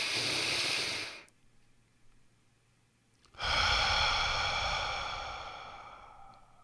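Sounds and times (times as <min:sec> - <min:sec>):
breathing from a square-breathing exercise: 0:00.0 - 0:01.3, 0:03.4 - 0:06.6.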